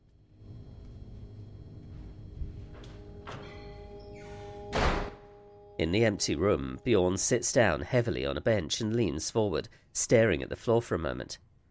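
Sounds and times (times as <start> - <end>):
quiet room hum: 0.0 - 11.7
door pulled shut with clicks and thud: 3.2 - 5.3
speech: 5.8 - 11.5.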